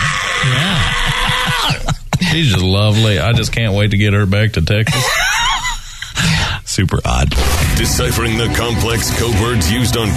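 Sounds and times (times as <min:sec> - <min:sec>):
person imitating the hellcat-like scream of a hissing nocturnal animal: 0:00.0 - 0:01.9
speech: 0:01.6 - 0:05.3, 0:06.2 - 0:10.1.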